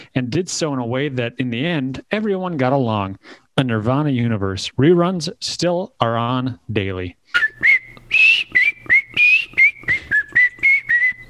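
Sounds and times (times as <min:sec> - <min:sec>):
speech: 0:00.2 - 0:08.6
man whistling a bouncy TV theme tune: 0:07.3 - 0:11.2.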